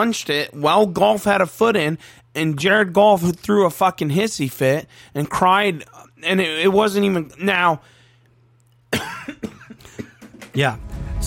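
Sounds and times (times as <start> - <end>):
speech: 0.0 - 8.0, 8.9 - 9.4, 10.6 - 11.2
person coughing: 8.9 - 10.3.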